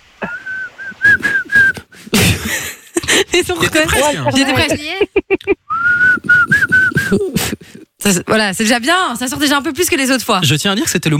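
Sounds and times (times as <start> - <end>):
speech: 0.2 - 0.4, 3.4 - 5.1, 7.1 - 7.3, 8.1 - 11.1
people laughing: 0.2 - 7.9
woman whistling a well-known song melody: 0.3 - 1.8, 5.7 - 7.1.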